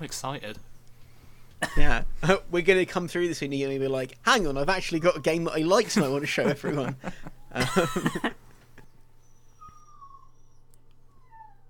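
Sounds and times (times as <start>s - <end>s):
speech: 0.0s - 0.7s, 1.6s - 8.4s
faint background noise: 0.0s - 11.6s
dog yelping with high strained cries: 4.9s - 5.7s, 8.8s - 11.6s
laughter: 5.8s - 8.5s.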